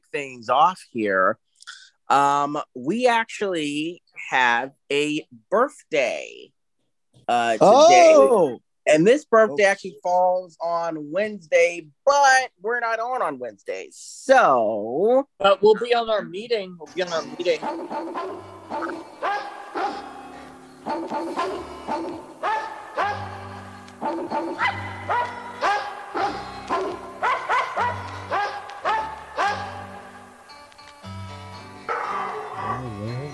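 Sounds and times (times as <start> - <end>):
speech: 0.1 - 6.6, 7.2 - 20.0, 20.9 - 23.4, 24.0 - 25.4
small Yorkie dog barking: 17.6 - 20.2, 20.8 - 23.4, 24.0 - 29.8, 31.9 - 33.3.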